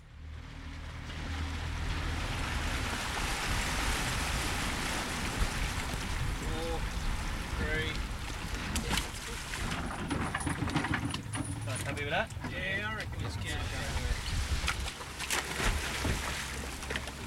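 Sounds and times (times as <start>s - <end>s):
faint boat engine rumble: 0.0s - 17.2s
steady wash of water from a boat on Port Phillip Bay: 0.1s - 17.2s
lapping waves on Port Phillip Bay: 0.2s - 17.2s
wind noise on Port Phillip Bay on an autumn morning: 2.6s - 11.2s, 13.6s - 14.9s.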